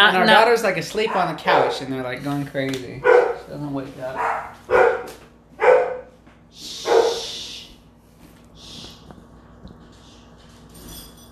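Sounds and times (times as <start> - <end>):
speech: 0.0 - 5.2
dogs barking: 0.9 - 2.0, 3.0 - 3.5, 4.1 - 6.2, 6.8 - 7.3.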